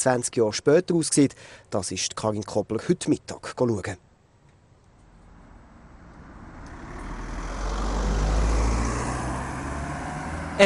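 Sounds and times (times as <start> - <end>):
speech: 0.0 - 4.1
road vehicles rumbling past: 4.9 - 10.6.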